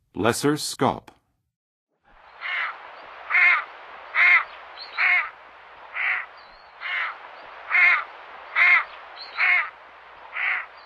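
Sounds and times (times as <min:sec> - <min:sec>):
Lesser Scaup calling in the western USA: 0:02.4 - 0:10.8.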